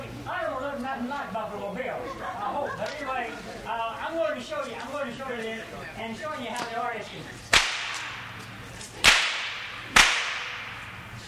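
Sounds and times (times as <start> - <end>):
speech: 1.0 - 7.6
laughter: 1.6 - 4.1
sharp loud whip cracks: 7.5 - 11.2.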